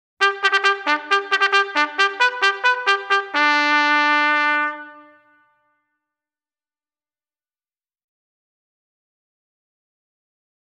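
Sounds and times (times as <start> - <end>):
ceremonial music: 0.2 - 5.1.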